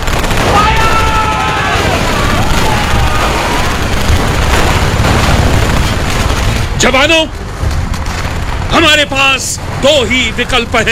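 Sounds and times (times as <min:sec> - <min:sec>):
battle gunfire from light machine guns and rifles: 0:00.0 - 0:06.9
mortars and grenades exploding as soldiers fire on advancing troops: 0:00.0 - 0:10.9
speech: 0:06.8 - 0:07.4, 0:08.8 - 0:10.9.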